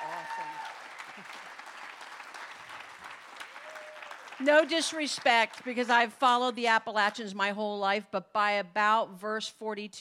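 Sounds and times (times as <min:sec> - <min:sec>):
audience applause: 0:00.0 - 0:05.8
speech: 0:04.4 - 0:10.0.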